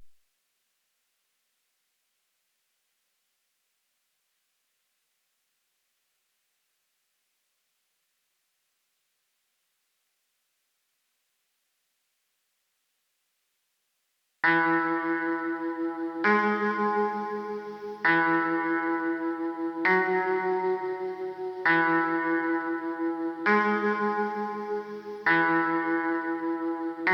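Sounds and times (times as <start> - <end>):
trap guitar melody loop in C sharp minor: 14.4 - 27.1.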